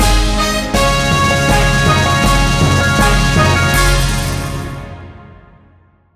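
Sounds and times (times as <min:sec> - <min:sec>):
marches and fanfares: 0:00.1 - 0:05.0.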